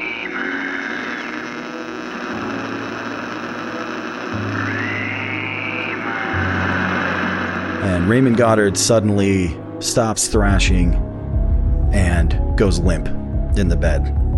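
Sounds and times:
radio static crackling: 0.0 - 9.0
speech: 8.0 - 11.1, 11.9 - 14.2.

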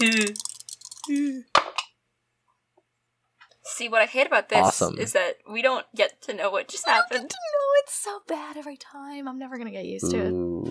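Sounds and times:
speech: 0.0 - 0.5, 1.1 - 1.5, 3.7 - 10.6
dice tumbling onto a hard surface: 0.0 - 1.9.

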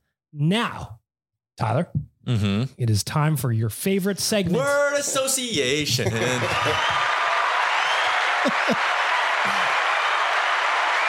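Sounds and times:
speech: 0.3 - 1.0, 1.6 - 7.2, 8.4 - 9.8
laughter: 4.5 - 10.1
applause: 6.2 - 11.0.

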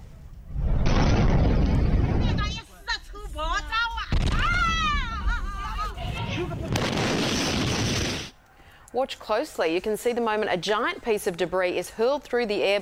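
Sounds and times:
liquid gas tanker explosion roaring blast: 0.5 - 2.5, 6.6 - 8.3
people shouting and crying out: 4.3 - 6.4
speech: 9.0 - 12.8.

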